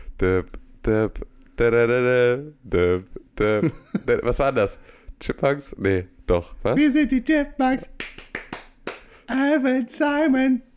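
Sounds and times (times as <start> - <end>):
person humming a bouncy TV theme melody: 0.0 - 4.2
speech: 0.2 - 8.2, 9.3 - 10.7.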